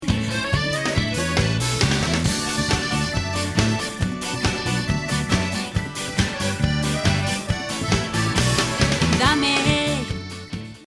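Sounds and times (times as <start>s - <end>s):
accordion: 0.0s - 10.8s.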